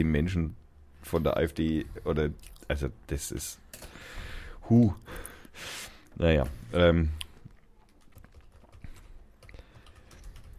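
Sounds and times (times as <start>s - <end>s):
speech: 0.0s - 7.2s
typing on a computer keyboard: 7.8s - 10.5s.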